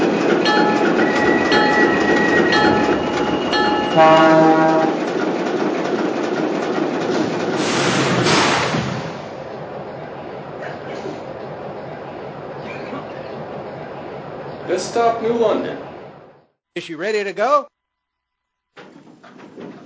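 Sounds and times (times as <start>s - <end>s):
train running on rails: 0.0s - 16.4s, 18.8s - 19.8s
train horn-like chord: 3.9s - 5.0s
speech: 4.0s - 4.8s, 14.8s - 15.9s, 16.8s - 17.7s
hissing burst: 7.6s - 9.4s.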